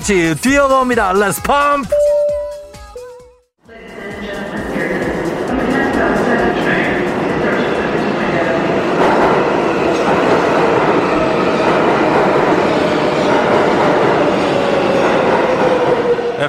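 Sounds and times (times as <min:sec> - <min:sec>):
speech: 0:00.0 - 0:02.0
subway train rumbling along: 0:03.6 - 0:16.4.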